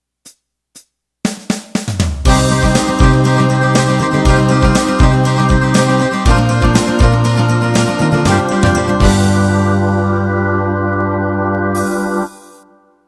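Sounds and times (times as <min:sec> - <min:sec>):
country music 16 beat intro: 0:00.2 - 0:12.6.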